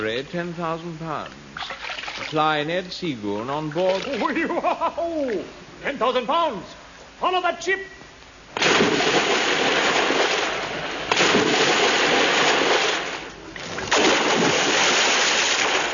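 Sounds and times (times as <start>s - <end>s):
speech: 0.0s - 8.0s
laughter: 4.0s - 5.5s
loud splashes into water: 8.6s - 15.9s.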